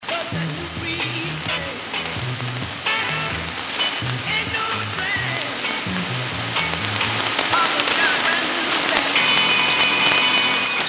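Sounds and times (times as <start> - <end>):
pirate radio broadcast on 1655 kHz: 0.3 - 10.7.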